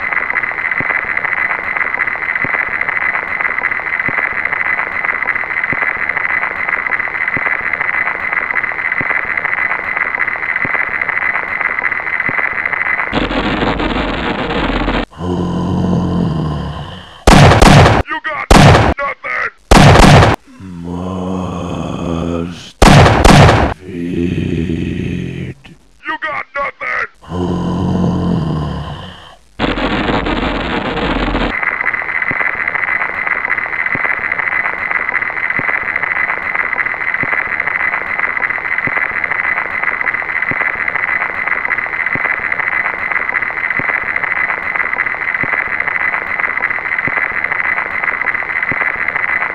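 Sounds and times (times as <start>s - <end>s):
static: 0.0s - 49.5s.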